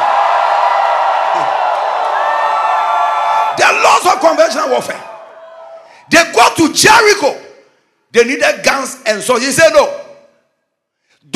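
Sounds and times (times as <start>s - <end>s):
scattered whoops: 0.0s - 3.6s, 5.0s - 6.0s
crowd of many voices shouting and cheering: 0.0s - 6.1s
speech: 4.0s - 5.1s, 6.1s - 7.4s, 8.1s - 10.0s.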